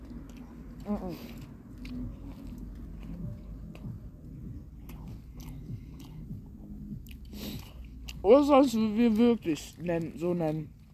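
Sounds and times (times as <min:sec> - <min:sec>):
lip-smacking: 0:00.0 - 0:08.2
person chewing a döner kebab: 0:00.0 - 0:10.1
low murmured hums: 0:00.0 - 0:10.9
speech: 0:00.9 - 0:02.6, 0:08.2 - 0:10.8.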